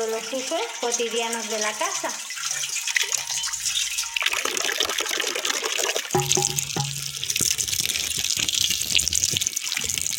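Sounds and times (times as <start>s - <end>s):
speech: 0.0s - 2.7s, 6.2s - 6.8s
water running from a village fountain: 0.0s - 10.1s
hollow ringing tone of a vessel catching the flow: 6.2s - 7.7s.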